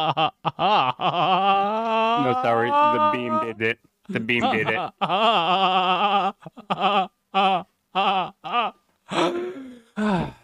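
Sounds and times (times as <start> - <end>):
laughter: 0.0 - 3.6, 4.2 - 7.1
speech: 0.0 - 8.3
man's voice imitating goat bleats: 2.2 - 4.8.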